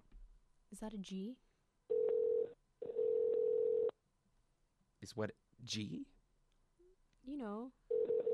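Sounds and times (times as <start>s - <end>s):
speech: 0.7s - 1.4s, 5.0s - 6.2s, 7.2s - 7.8s
telephone ringing tone on an outgoing call: 1.9s - 3.9s, 7.9s - 8.3s.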